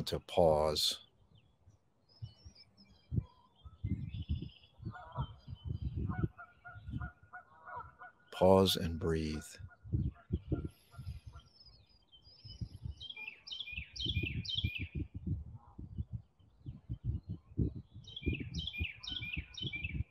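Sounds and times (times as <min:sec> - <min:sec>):
speech: 0:00.0 - 0:01.0, 0:08.4 - 0:10.0
birds chirping and singing outdoors: 0:00.0 - 0:20.0.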